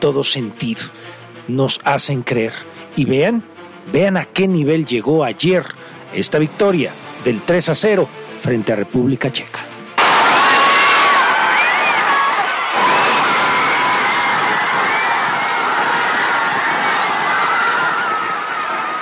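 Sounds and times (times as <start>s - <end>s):
speech: 0.0s - 9.6s
large crowd cheering and shouting in an open public square: 10.0s - 18.9s
whoops and screams from a crowd: 10.0s - 18.9s.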